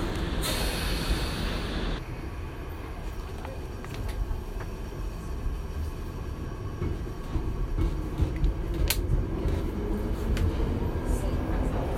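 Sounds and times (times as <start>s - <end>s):
London Underground tube train pulling away: 0.0s - 11.9s
burst of hissing air from underground train: 0.2s - 2.0s.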